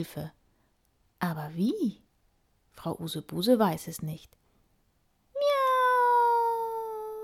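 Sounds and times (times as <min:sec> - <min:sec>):
speech: 0:00.0 - 0:00.4, 0:01.2 - 0:02.0, 0:02.8 - 0:04.4
spotted cat stuck up a tree meowing: 0:05.4 - 0:07.2.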